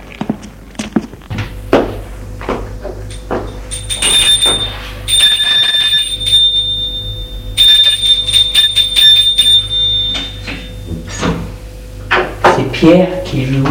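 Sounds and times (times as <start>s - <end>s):
low hum: 0.0s - 12.4s
doorbell ringing at a small furnished apartment: 3.5s - 11.0s
speech: 12.8s - 13.6s.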